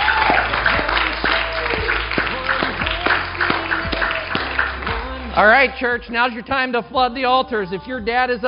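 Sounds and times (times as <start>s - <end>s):
congregation applauding: 0.0s - 5.7s
speech: 5.4s - 8.4s.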